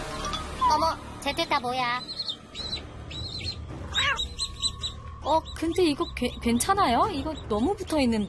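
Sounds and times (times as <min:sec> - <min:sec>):
speech: 0:00.7 - 0:02.2, 0:05.2 - 0:08.2
baby chicks peeping: 0:01.9 - 0:08.2.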